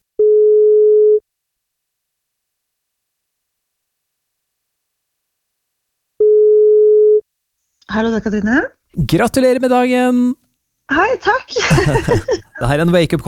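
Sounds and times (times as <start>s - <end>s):
telephone ringback tone: 0.2s - 1.2s, 6.2s - 7.2s
speech: 7.9s - 13.2s
laughter: 11.6s - 12.8s.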